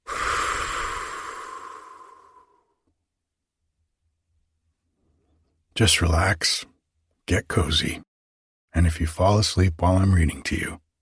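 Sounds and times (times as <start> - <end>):
deep breath let out in one long breathy exhale: 0.0 - 2.8
speech: 5.8 - 6.7, 7.3 - 8.1, 8.7 - 10.8.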